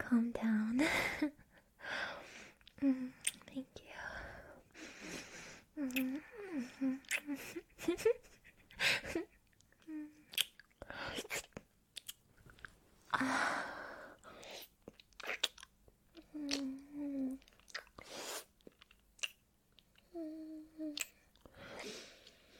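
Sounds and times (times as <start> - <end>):
soft breathy vocal sounds and brief tonal murmurs: 0.0 - 7.8, 13.1 - 14.9, 16.1 - 18.5, 20.0 - 22.5
speech: 0.1 - 1.4
wet munching and mouth noises at the microphone: 7.0 - 7.4, 9.6 - 12.8, 14.6 - 15.7, 16.5 - 20.0, 20.9 - 21.5.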